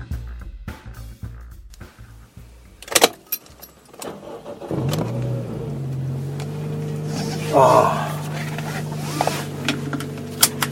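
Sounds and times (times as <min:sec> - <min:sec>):
road rumble inside a moving car: 0:02.2 - 0:10.6
engine hum inside a moving car: 0:02.3 - 0:10.6
speech: 0:07.6 - 0:07.8.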